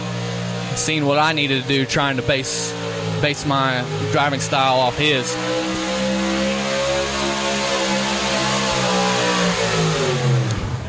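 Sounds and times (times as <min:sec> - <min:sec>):
heavy truck engines revving at a truck and tractor pull: 0:00.0 - 0:10.8
speech: 0:00.8 - 0:05.6.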